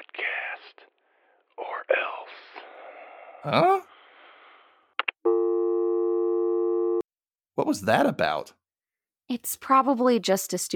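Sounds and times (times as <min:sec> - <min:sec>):
speech: 0:03.4 - 0:03.9, 0:07.6 - 0:08.6, 0:09.3 - 0:10.7
telephone busy signal from an accidental pocket dial: 0:05.3 - 0:07.0.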